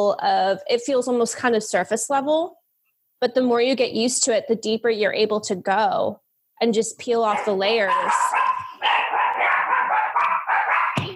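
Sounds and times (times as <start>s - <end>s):
speech: 0.0s - 2.6s, 3.2s - 8.6s
puppies barking and yipping: 7.3s - 11.1s
puppy yelp: 7.3s - 11.1s
thump: 11.0s - 11.1s.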